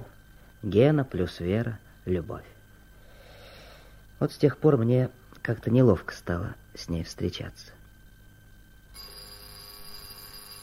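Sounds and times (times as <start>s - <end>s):
speech: 0.6s - 2.6s, 4.2s - 7.8s
telephone bell ringing: 9.0s - 10.6s.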